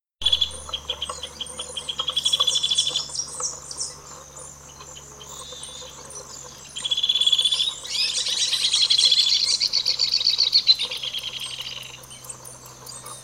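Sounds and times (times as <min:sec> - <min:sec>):
Hornerito copeton bird calling: 0:00.2 - 0:13.2.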